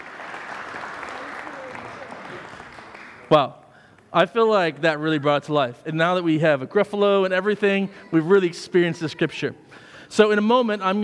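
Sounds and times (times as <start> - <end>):
audience applauding participants of a scripture re-enactment: 0.0 - 3.4
speech: 3.3 - 11.0.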